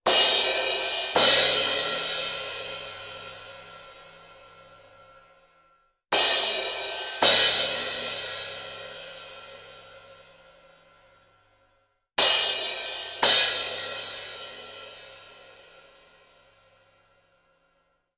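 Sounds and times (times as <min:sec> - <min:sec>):
cymbals: 0:00.1 - 0:05.2, 0:06.1 - 0:10.3, 0:12.2 - 0:16.0.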